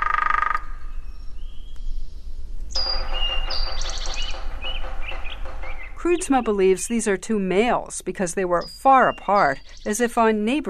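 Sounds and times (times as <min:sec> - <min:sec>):
outdoor noise: 0:00.0 - 0:10.6
hairy woodpeckers drumming: 0:02.7 - 0:10.6
speech: 0:06.0 - 0:10.6.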